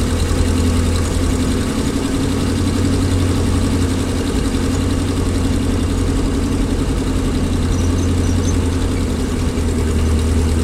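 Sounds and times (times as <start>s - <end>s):
engine running under load: 0.0s - 10.6s.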